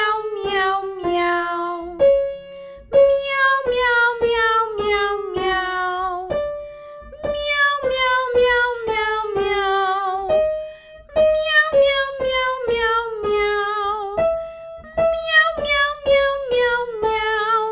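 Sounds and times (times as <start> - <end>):
person singing meows down a five-note descending scale: 0.0 - 2.0, 2.8 - 17.7.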